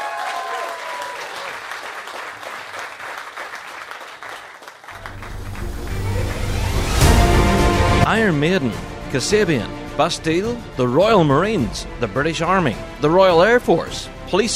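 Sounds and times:
large crowd clapping and cheering: 0:00.0 - 0:08.1
speech: 0:08.1 - 0:14.5.

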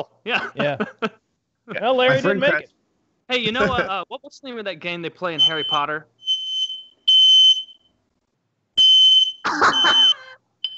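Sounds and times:
speech: 0:00.0 - 0:01.2, 0:01.8 - 0:02.7, 0:03.3 - 0:06.2
laughter: 0:00.3 - 0:02.6, 0:03.3 - 0:04.2
fire alarm in loud shrill electronic beeps: 0:05.4 - 0:07.9, 0:08.8 - 0:10.7.

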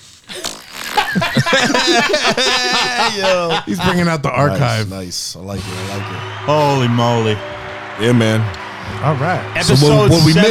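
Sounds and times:
loud raspy recorded fart sound: 0:00.0 - 0:04.0
laughter: 0:00.3 - 0:05.3
speech: 0:01.2 - 0:10.5.

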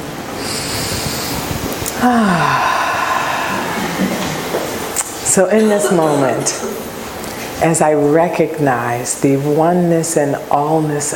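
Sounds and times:
deep breath taken in a guided meditation: 0:00.4 - 0:04.6
speech: 0:02.0 - 0:02.8, 0:05.3 - 0:06.9, 0:07.6 - 0:11.1.

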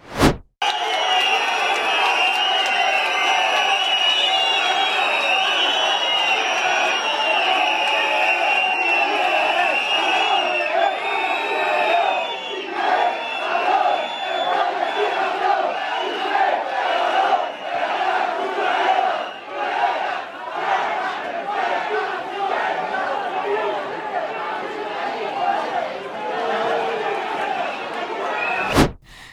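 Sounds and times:
whistles: 0:00.6 - 0:18.1, 0:18.9 - 0:19.8, 0:27.4 - 0:29.3
football fans chanting insults at open training session: 0:10.3 - 0:29.3.

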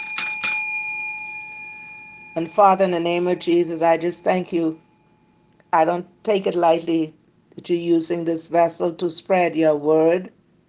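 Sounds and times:
small bell struck: 0:00.0 - 0:05.2
speech: 0:02.4 - 0:04.8, 0:05.7 - 0:10.4.

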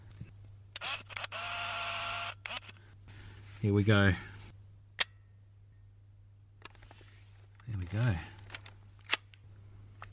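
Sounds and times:
camera shutter clicking: 0:00.8 - 0:02.8
speech: 0:03.6 - 0:04.3, 0:07.9 - 0:08.3.

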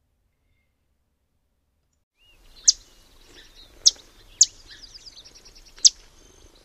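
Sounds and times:
faint background hiss: 0:00.0 - 0:06.6
yellow warbler sharp chit call: 0:02.2 - 0:06.6.

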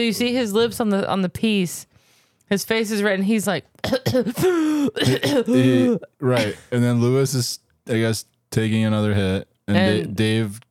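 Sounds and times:
speech: 0:00.0 - 0:01.9, 0:02.5 - 0:10.6
voice imitating a cough: 0:03.8 - 0:06.7.

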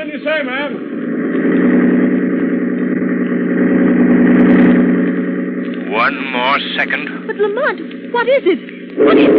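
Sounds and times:
car engine revving at full throttle: 0:00.0 - 0:09.3
speech: 0:00.1 - 0:01.8, 0:06.1 - 0:09.3.

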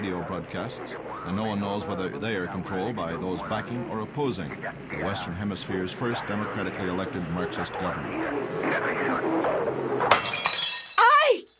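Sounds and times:
voices: 0:00.0 - 0:09.2
speech: 0:00.2 - 0:09.6
glass shattering into tinkling fragments: 0:10.1 - 0:11.5.

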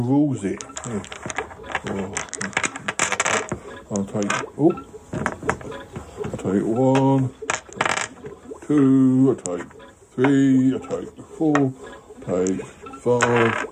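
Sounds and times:
speech: 0:00.0 - 0:02.7, 0:03.9 - 0:05.8, 0:06.4 - 0:07.4, 0:08.7 - 0:13.6
small picture dice clattering across a hard surface: 0:00.6 - 0:04.4, 0:07.5 - 0:08.2, 0:13.2 - 0:13.6.

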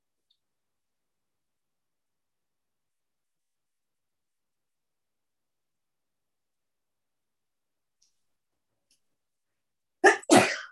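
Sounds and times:
person sneezing: 0:10.0 - 0:10.7.

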